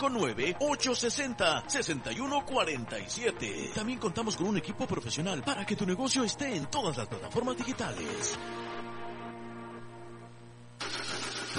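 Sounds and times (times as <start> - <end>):
speech: 0.0 - 8.6
car engine cranking with a labored whir and roaring to life: 10.8 - 11.5.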